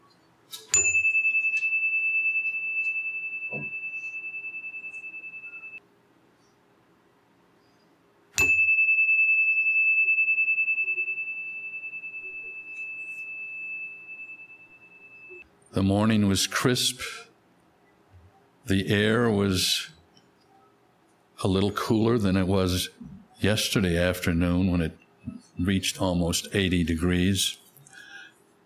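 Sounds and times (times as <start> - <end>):
meditation chime ringing: 0.7 - 5.8, 8.4 - 15.4
speech: 15.8 - 17.3, 18.7 - 20.0, 21.4 - 25.0, 25.6 - 27.6.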